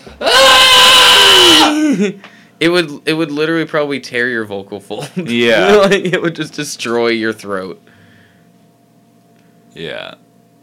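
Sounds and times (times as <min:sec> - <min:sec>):
speech: 0:00.1 - 0:00.6, 0:02.0 - 0:07.9, 0:09.8 - 0:10.2
person shrieking imitating a small animal: 0:00.1 - 0:02.0.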